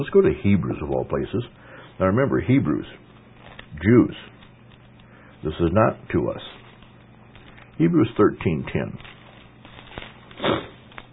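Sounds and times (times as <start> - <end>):
speech: 0.0 - 3.1, 3.7 - 4.4, 5.4 - 6.6, 7.8 - 9.1
short breathy sniff through the nose: 10.3 - 11.0.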